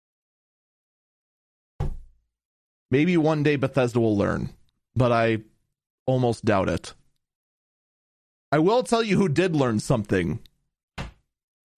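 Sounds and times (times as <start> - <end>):
heavy server room door thudding shut: 1.8 - 2.1
speech: 2.9 - 5.5, 6.1 - 7.0, 8.5 - 10.5.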